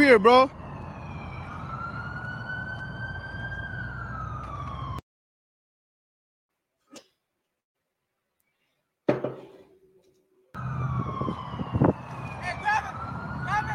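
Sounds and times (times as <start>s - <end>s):
speech: 0.0s - 0.6s
police siren wailing: 0.0s - 5.0s, 10.6s - 13.7s
road rumble: 0.0s - 5.0s, 10.6s - 13.7s.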